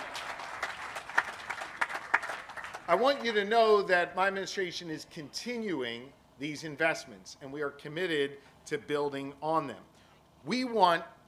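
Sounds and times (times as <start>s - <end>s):
audience clapping: 0.0s - 3.8s
speech: 2.9s - 11.2s.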